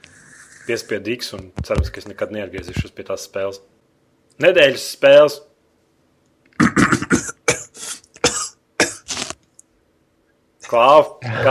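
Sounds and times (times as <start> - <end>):
speech: 0.7 - 3.8, 4.4 - 5.5, 10.7 - 11.4
person coughing harshly in a coughing fit: 6.6 - 9.4.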